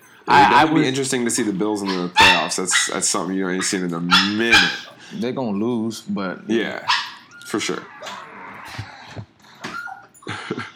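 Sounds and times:
speech: 0.3s - 7.9s
dog barking: 1.8s - 5.0s, 6.9s - 7.3s.

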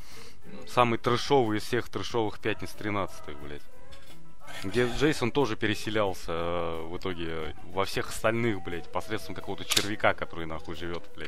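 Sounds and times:
speech: 0.8s - 3.8s, 4.6s - 11.2s
sharp plastic clicks: 9.7s - 10.0s.

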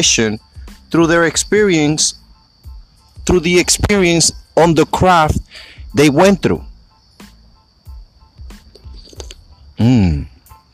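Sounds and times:
speech: 0.0s - 2.2s, 3.2s - 6.7s, 9.8s - 10.3s
loud drawn-out satisfied exhale: 5.5s - 5.9s
sipping and gulping hot coffee: 8.8s - 9.4s.

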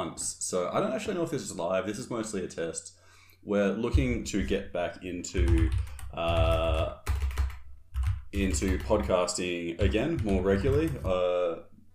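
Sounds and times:
speech: 0.1s - 7.1s, 8.3s - 11.7s
typing on a computer keyboard: 5.4s - 11.3s.

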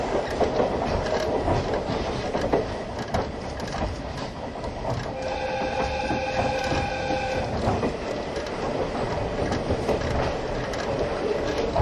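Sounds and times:
old-style passenger coach train wheels and carriage rumbling: 0.0s - 11.8s
train wheels clacking over rail joints: 0.0s - 11.8s
thin high metallic squeal of train: 5.2s - 7.6s.

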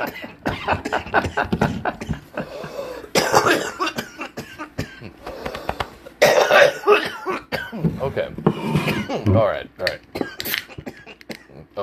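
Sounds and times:
speech: 0.0s - 1.9s
person coughing harshly after smoking: 0.0s - 5.5s, 6.2s - 7.9s, 8.5s - 9.4s, 10.2s - 11.7s
person gasping: 2.4s - 3.2s, 5.2s - 6.1s.

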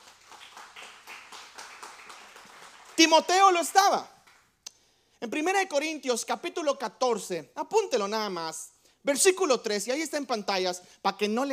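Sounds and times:
audience applauding at a Christian sermon: 0.0s - 4.5s
speech: 3.0s - 4.2s, 5.2s - 11.5s.

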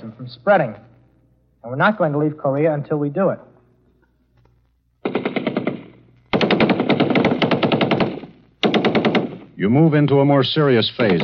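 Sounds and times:
speech: 0.0s - 0.9s, 1.6s - 3.5s, 9.6s - 11.2s
machine gun fire on an army infiltration training course: 5.0s - 9.6s.

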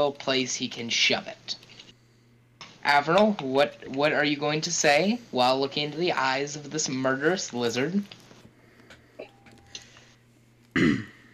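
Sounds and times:
speech: 0.0s - 1.6s, 2.8s - 8.2s
tabletop role-playing game player clearing throat: 10.8s - 11.3s.

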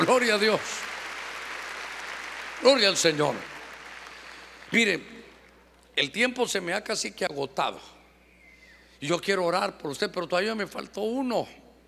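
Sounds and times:
speech: 0.0s - 0.9s, 2.6s - 3.5s, 4.7s - 5.1s, 6.0s - 8.0s, 9.0s - 11.6s
crowd clapping loudly: 0.0s - 5.5s.

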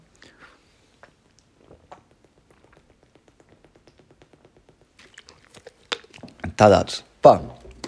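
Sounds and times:
person sipping water: 0.0s - 6.6s
wet mouth sounds: 0.0s - 6.6s
person swallowing: 1.0s - 6.6s
quick regular gulping clicks: 1.0s - 6.7s
speech: 6.6s - 7.6s.

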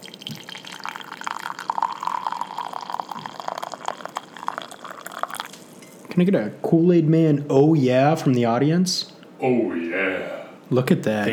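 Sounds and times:
black tea with lavender and bergamot pouring into a cup: 0.0s - 6.1s
speech: 6.2s - 9.8s, 10.7s - 11.3s.

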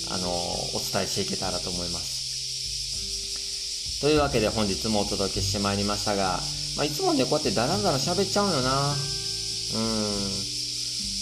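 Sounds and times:
cicadas buzzing on a hot July day: 0.0s - 11.2s
speech: 0.1s - 2.2s, 4.0s - 10.5s
low sustained voice-like tone shifting pitch: 9.7s - 10.4s.

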